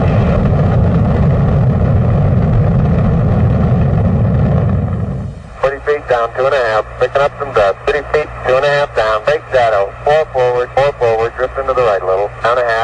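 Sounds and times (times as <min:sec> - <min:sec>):
Apollo 11 rocket engines roaring at liftoff: 0:00.0 - 0:12.8
crackly radio-style voices talking: 0:05.6 - 0:12.8
speech: 0:06.2 - 0:11.0.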